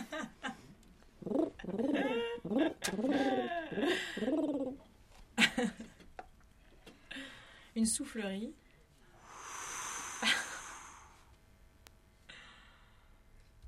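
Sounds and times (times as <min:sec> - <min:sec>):
person imitating pigeons cooing: 0:01.2 - 0:04.8
speech: 0:01.7 - 0:04.3, 0:07.8 - 0:08.7
sharp breathy bursts: 0:09.1 - 0:11.4.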